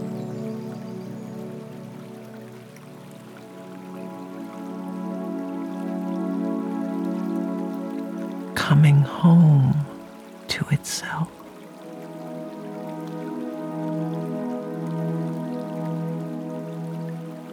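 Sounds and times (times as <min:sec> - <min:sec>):
raindrops pattering onto a still body of water: 0:01.3 - 0:17.5
speech: 0:08.7 - 0:09.8, 0:10.6 - 0:11.4.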